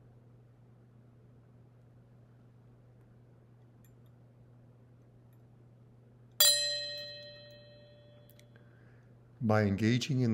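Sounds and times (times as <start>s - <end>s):
soft steady low hum: 0.0s - 9.4s
single meditation bell struck: 6.4s - 8.5s
speech: 9.4s - 10.3s.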